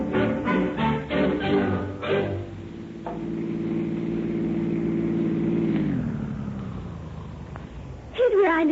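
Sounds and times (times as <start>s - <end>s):
car engine droning as someone is driven home: 0.0s - 8.6s.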